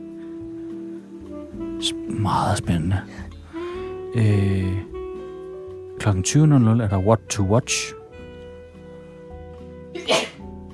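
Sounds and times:
speech: 1.8 - 3.4, 4.1 - 4.9, 6.0 - 8.0
person sneezing: 9.9 - 10.5.

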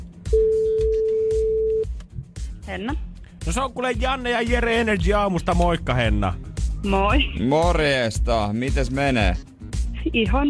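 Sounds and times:
phone call ringback tone: 0.3 - 1.9
speech: 2.7 - 10.4.

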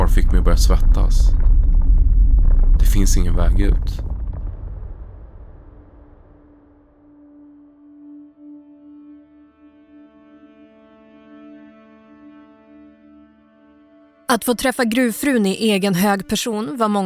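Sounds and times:
low droning tone: 0.0 - 13.4
rockfall of stones crashing to the ground: 0.1 - 6.4
speech: 0.4 - 1.6, 2.8 - 4.0, 14.3 - 17.0.

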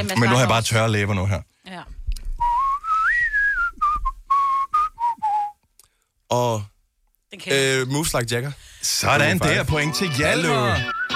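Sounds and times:
speech: 0.0 - 2.0, 6.3 - 6.7, 7.3 - 11.0
person whistling a pop song melody: 2.4 - 5.6, 10.6 - 11.1.

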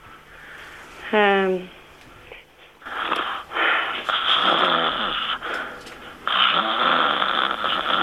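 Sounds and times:
person snoring deliberately: 2.8 - 8.0.

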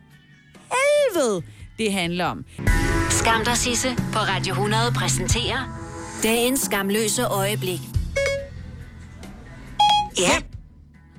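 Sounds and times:
speech: 1.1 - 8.0, 10.2 - 10.5
voice assistant activation electronic chimes: 8.0 - 8.6, 9.8 - 10.2.

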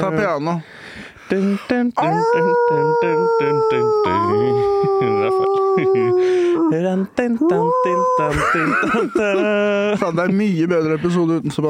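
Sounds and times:
speech: 0.0 - 11.6
short rhythmic vocal pulses: 1.9 - 8.6
laughter: 2.0 - 6.6, 7.6 - 10.4
person imitating a wolf howl: 2.0 - 8.4.

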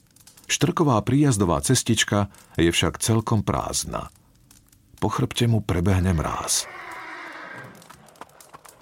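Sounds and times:
speech: 0.5 - 4.2, 5.0 - 6.8
horse hooves clattering while galloping: 6.1 - 8.8
wild horse neighing loudly and shrilly: 6.5 - 8.7.

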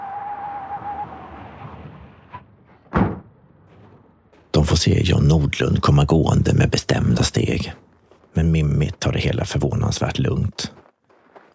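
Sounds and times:
car door slamming shut: 2.9 - 3.3
speech: 4.8 - 7.8, 8.4 - 10.8.

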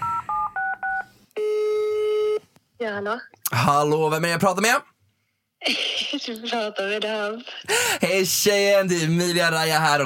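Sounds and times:
dual-pitched phone keypad DTMF beeps while dialing a call: 0.0 - 2.4
speech: 2.8 - 4.9, 5.6 - 10.0.

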